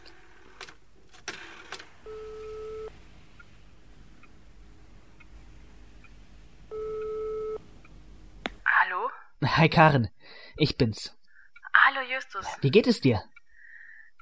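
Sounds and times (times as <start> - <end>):
ringback tone of an outgoing telephone call on speakerphone: 2.0 - 2.9, 6.7 - 7.6
speech: 9.6 - 11.2, 12.1 - 13.3.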